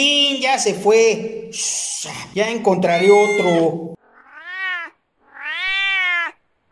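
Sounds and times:
speech: 0:00.0 - 0:04.0
cat meowing: 0:02.9 - 0:06.7.

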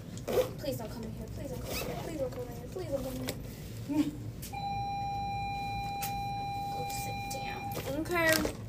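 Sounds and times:
speech: 0:00.3 - 0:04.7, 0:08.0 - 0:08.6
steady electronic bell tone: 0:04.6 - 0:08.0.

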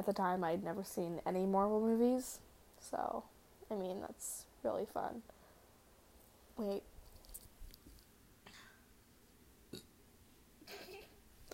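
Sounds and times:
speech: 0:00.0 - 0:05.4, 0:06.6 - 0:06.9
faint burp: 0:09.7 - 0:09.9.

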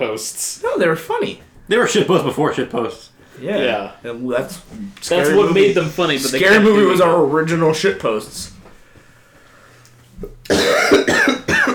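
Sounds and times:
speech: 0:00.0 - 0:08.6
harsh loud coughs: 0:10.2 - 0:11.7.

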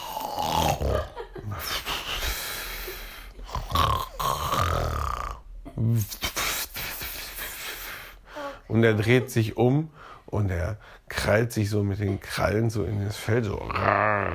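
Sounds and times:
person imitating loud rasping snores: 0:00.0 - 0:01.1, 0:03.4 - 0:05.4, 0:13.5 - 0:14.3
laughter: 0:00.8 - 0:03.0, 0:08.7 - 0:09.8
speech: 0:08.8 - 0:14.3.

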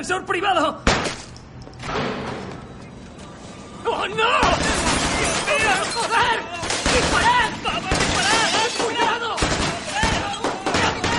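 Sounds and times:
speech: 0:00.0 - 0:01.2, 0:03.8 - 0:04.8, 0:05.5 - 0:09.2
office building window glass shattering and cracking: 0:04.4 - 0:11.1
people shouting: 0:05.4 - 0:11.1.

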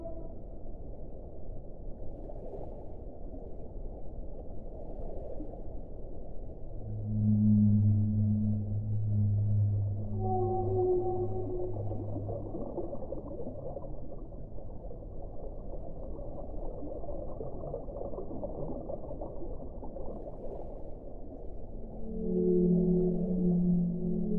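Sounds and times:
whales singing underwater: 0:06.7 - 0:13.6, 0:21.7 - 0:24.3.

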